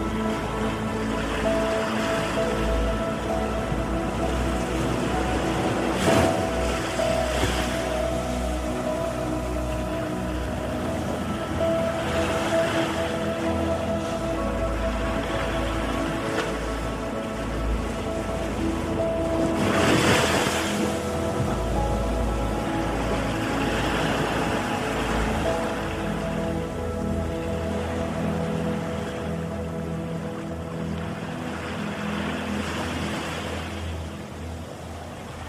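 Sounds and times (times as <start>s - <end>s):
ocean waves: 0.0s - 35.4s
slow sustained meditation music with soft held tones and low drone: 0.0s - 35.4s.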